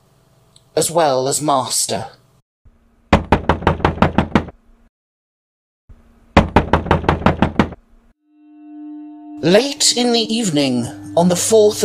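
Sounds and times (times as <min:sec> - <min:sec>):
speech: 0:00.8 - 0:02.2, 0:09.4 - 0:11.8
loud heavy knocking on a door: 0:03.1 - 0:04.6, 0:06.4 - 0:07.8
low sustained tone: 0:08.3 - 0:11.8.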